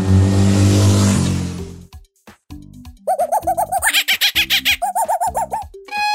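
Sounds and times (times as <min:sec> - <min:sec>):
motorcycle engine roaring: 0:00.0 - 0:01.9
monkey giving rapid shrill chattering calls: 0:03.0 - 0:05.8
brief violin note: 0:05.9 - 0:06.1.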